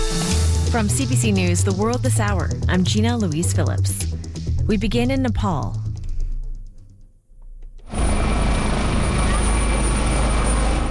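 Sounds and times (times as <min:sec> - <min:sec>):
speech: 0:00.1 - 0:05.8
helicopter rotor and engine: 0:07.9 - 0:10.9.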